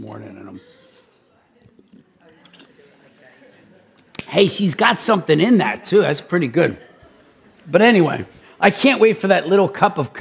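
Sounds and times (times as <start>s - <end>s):
speech: 0.1s - 0.8s, 4.3s - 6.9s, 7.7s - 10.1s
person sipping coffee or water: 1.8s - 3.0s.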